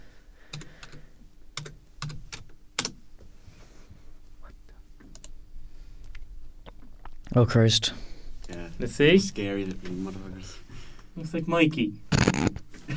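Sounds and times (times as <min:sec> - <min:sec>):
typing on a computer keyboard: 0:00.5 - 0:01.0, 0:01.6 - 0:03.0
speech: 0:07.4 - 0:08.0, 0:08.8 - 0:10.6, 0:11.2 - 0:12.5.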